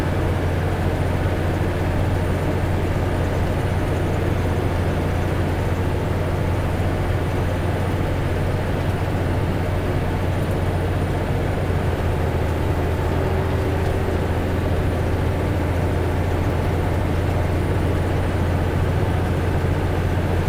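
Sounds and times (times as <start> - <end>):
car cabin while driving: 0.0 - 20.4.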